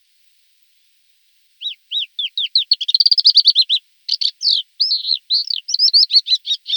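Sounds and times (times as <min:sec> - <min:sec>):
Thekla's lark song: 0:01.6 - 0:06.7.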